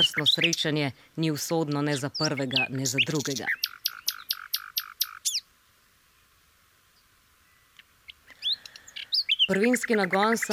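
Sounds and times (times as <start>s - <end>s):
bird chirps and sharp trill: 0.0s - 0.8s, 1.7s - 5.5s, 7.0s - 10.5s
speech: 0.0s - 3.6s, 9.5s - 10.5s
bird singing bright repeated notes: 0.0s - 5.5s, 6.9s - 10.5s.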